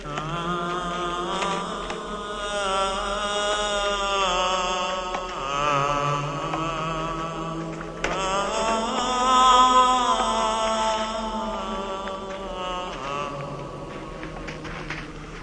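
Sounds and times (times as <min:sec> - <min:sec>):
man moaning singing: 0:00.0 - 0:15.2.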